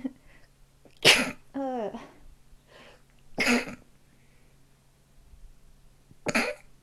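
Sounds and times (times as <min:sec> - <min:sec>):
faint low hum: 0:00.0 - 0:06.8
person sneezing: 0:01.0 - 0:01.4, 0:03.4 - 0:03.8, 0:06.3 - 0:06.6.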